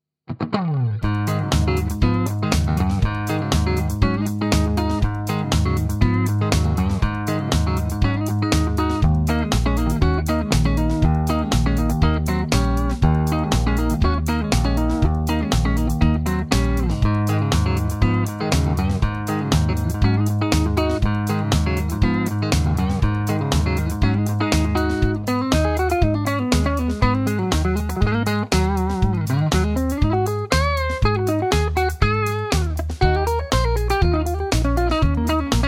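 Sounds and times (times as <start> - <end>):
clean Tele electric guitar on neck pickup: 0.3 - 35.6.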